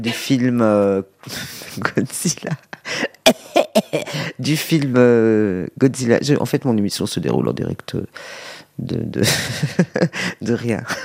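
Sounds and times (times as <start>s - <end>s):
speech: 0.0s - 11.0s
older woman coughing: 3.2s - 4.3s.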